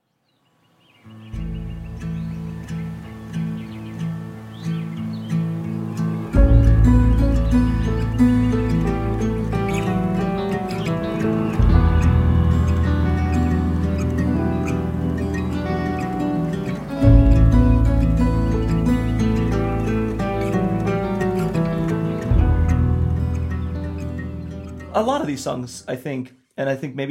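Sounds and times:
small high chirps and tweets of birdsong: 0.0 - 25.9
steady tonal drone with a deep bass: 6.2 - 24.9
speech: 25.0 - 27.0.

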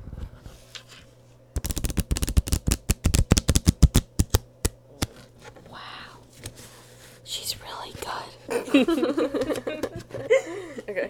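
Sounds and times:
faint hum: 0.0 - 11.0
tarot cards being shuffled: 1.6 - 5.3
laughter: 8.5 - 11.0
speech: 8.7 - 11.0.

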